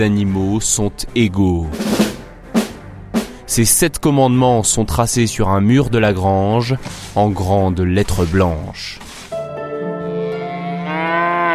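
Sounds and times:
speech: 0.0 - 2.0, 3.5 - 9.0
cow mooing in a deep sustained bellow: 10.1 - 11.5.

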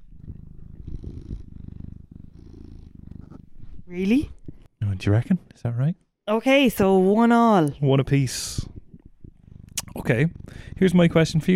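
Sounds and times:
cat purring: 0.0 - 5.3, 7.7 - 11.5
speech: 3.9 - 4.4, 5.0 - 8.7, 10.1 - 11.5.

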